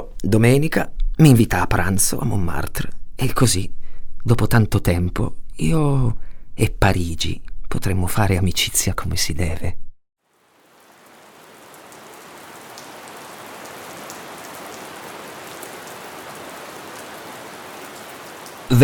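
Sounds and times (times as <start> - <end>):
speech: 0.2 - 9.8
heavy rain falling: 10.2 - 18.8.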